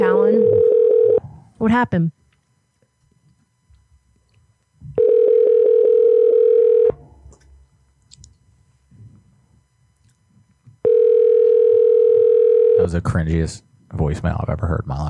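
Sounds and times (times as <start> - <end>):
telephone tone while calling someone back: 0.0 - 1.3, 5.0 - 7.0, 10.8 - 12.9
speech: 1.6 - 2.2, 12.9 - 15.0
quiet telephone line noise with faint clicks: 2.2 - 5.0, 6.9 - 8.5, 9.9 - 10.8.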